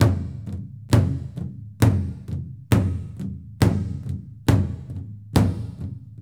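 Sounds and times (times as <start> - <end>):
big drum in a gym: 0.0 - 6.2.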